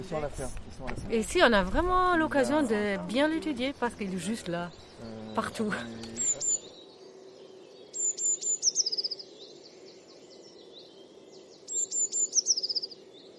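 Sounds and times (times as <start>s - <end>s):
speech: 0.0s - 6.1s
blue tit singing: 2.6s - 9.5s, 11.6s - 13.3s.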